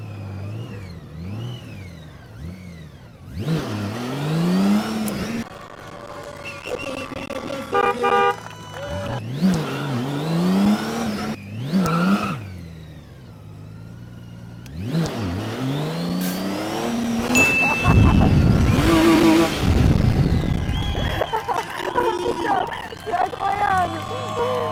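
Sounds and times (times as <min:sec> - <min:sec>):
car engine revving while accelerating: 0:00.0 - 0:24.7
steady horn-like toot: 0:06.4 - 0:09.2
laughter: 0:06.5 - 0:09.2, 0:17.4 - 0:19.7, 0:20.6 - 0:24.7.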